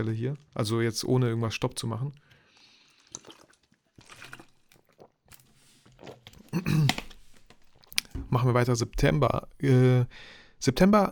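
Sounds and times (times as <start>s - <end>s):
speech: 0.0s - 2.3s, 6.0s - 7.0s, 8.3s - 11.1s
person sipping and swallowing water: 2.2s - 8.1s.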